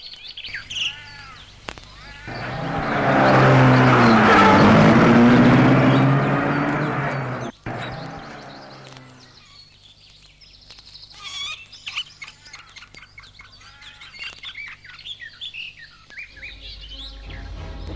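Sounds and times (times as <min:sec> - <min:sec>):
birds chirping: 0:00.0 - 0:17.9
car engine starting and driving off: 0:02.2 - 0:09.2.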